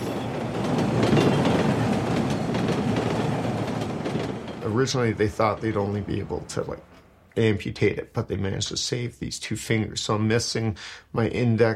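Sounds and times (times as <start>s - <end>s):
train wheels clacking: 0.0s - 7.1s
train moving slowly and rumbling along the track: 0.0s - 9.0s
speech: 4.7s - 11.7s.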